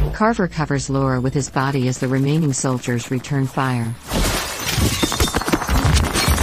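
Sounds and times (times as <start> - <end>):
speech: 0.2 - 4.1
window glass shattering as someone crashes through a window: 4.1 - 6.4.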